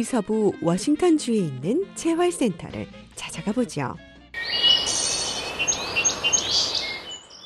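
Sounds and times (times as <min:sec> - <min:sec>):
speech: 0:00.0 - 0:04.6
birds chirping and singing at a rural farm: 0:04.4 - 0:07.4
soft steady outdoor hush: 0:04.6 - 0:07.1.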